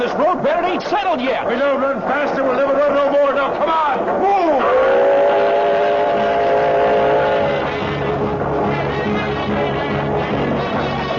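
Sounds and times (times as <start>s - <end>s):
steam locomotive engine running fast at full throttle: 0.0s - 10.5s
speech: 0.1s - 5.1s
steam locomotive whistle: 4.6s - 11.1s.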